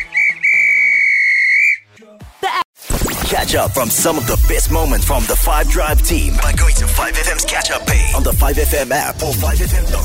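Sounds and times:
referee's whistle blown to end the match: 0:00.0 - 0:01.9
speech: 0:03.4 - 0:10.0.

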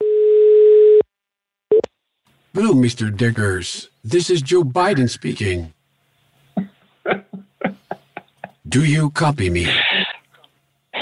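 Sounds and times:
telephone line tone before a call: 0:00.0 - 0:01.0
speech: 0:02.6 - 0:05.8, 0:08.7 - 0:09.8
laughter: 0:06.6 - 0:08.7.

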